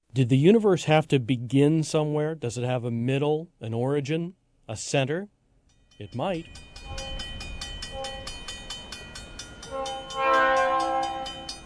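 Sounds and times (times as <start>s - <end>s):
speech: 0.2s - 5.4s, 6.0s - 7.1s
train rolling past a railroad crossing in Philo Illinois: 5.8s - 11.6s
train horn blaring: 6.8s - 8.6s, 9.6s - 11.6s.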